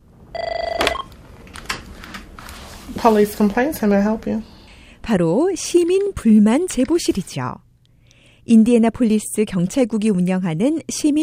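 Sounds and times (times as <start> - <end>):
trilling electronic telephone ring: 0.4 - 1.1
speech: 3.0 - 4.5, 5.1 - 7.6, 8.5 - 11.2.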